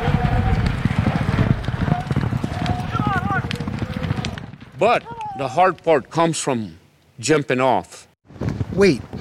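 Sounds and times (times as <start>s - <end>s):
horses galloping hard on a half-mile race track in an Indian Relay race: 0.0s - 6.2s
speech: 4.8s - 8.0s, 8.8s - 9.1s.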